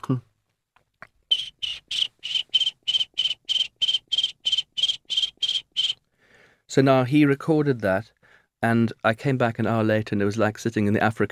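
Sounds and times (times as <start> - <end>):
speech: 0.0 - 0.3, 6.8 - 11.3
person imitating cricket chirps with voice for a music recording: 1.3 - 6.0
person breathing: 6.0 - 6.7, 8.2 - 8.6.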